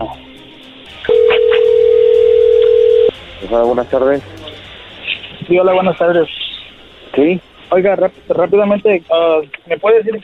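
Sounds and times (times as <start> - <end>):
speech: 0.1 - 0.3, 3.4 - 4.3, 5.5 - 6.4, 7.1 - 10.2
telephone line tone as a call is dialed: 1.1 - 3.2.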